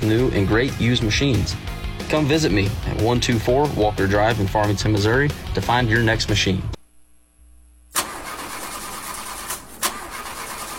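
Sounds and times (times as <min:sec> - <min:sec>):
speech: 0:00.0 - 0:06.8
car engine cranking and failing to start: 0:08.0 - 0:10.7.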